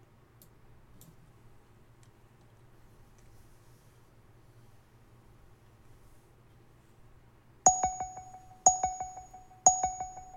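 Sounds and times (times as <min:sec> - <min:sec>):
bright metallic dings of a countdown timer effect: 0:07.7 - 0:10.3.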